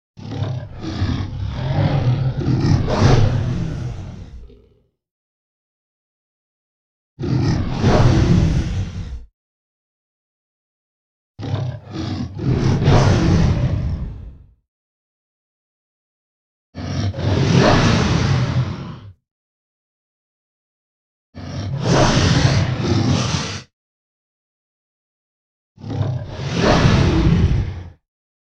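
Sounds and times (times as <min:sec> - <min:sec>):
dragon roars: 0:00.2 - 0:04.9, 0:07.2 - 0:09.3, 0:11.4 - 0:14.5, 0:16.8 - 0:19.2, 0:21.4 - 0:23.7, 0:25.8 - 0:28.0.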